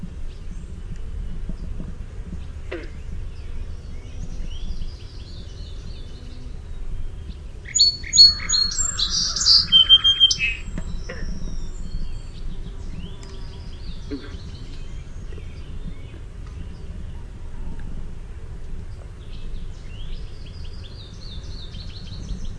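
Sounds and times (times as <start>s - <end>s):
faint birds: 0.0s - 22.5s
Song sparrow song: 0.1s - 18.0s, 18.8s - 22.5s.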